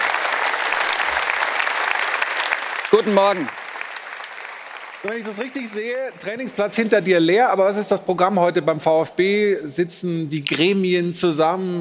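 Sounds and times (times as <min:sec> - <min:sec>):
studio audience applause in Munich: 0:00.0 - 0:07.4
speech: 0:03.0 - 0:03.6, 0:05.0 - 0:11.7.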